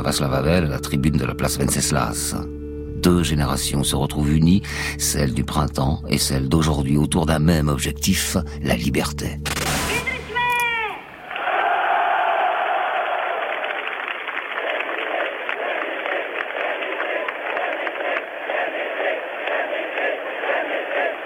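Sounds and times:
speech: 0:00.0 - 0:09.6
vast protest crowd roaring and cheering in city square: 0:10.0 - 0:21.2.

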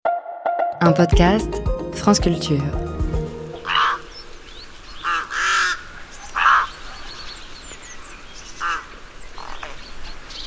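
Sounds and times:
speech: 0:00.8 - 0:02.9
rooks cawing harshly: 0:03.5 - 0:06.9, 0:08.6 - 0:09.6.

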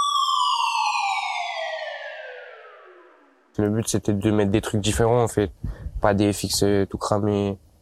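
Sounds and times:
synthetic siren sound effect wailing: 0:00.0 - 0:03.6
speech: 0:03.6 - 0:07.6.

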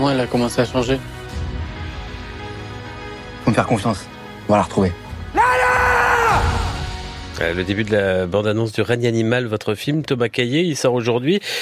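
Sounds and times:
speech: 0:00.0 - 0:01.2, 0:03.6 - 0:05.0, 0:07.4 - 0:11.5
creature-like cry of a human undergoing mutation from a film trailer: 0:05.4 - 0:06.8.

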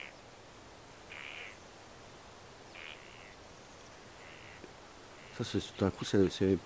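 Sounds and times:
steady hiss of noise: 0:00.0 - 0:06.6
crows cawing: 0:01.1 - 0:01.6, 0:02.7 - 0:03.4, 0:04.1 - 0:05.5
speech: 0:05.4 - 0:06.6.

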